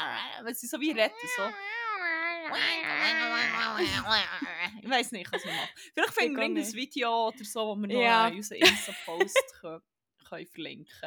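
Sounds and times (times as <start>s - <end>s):
human voice imitating an odd cat yowl: 0.0s - 4.8s
speech: 0.4s - 11.0s
laughter: 2.6s - 6.7s, 8.6s - 9.4s.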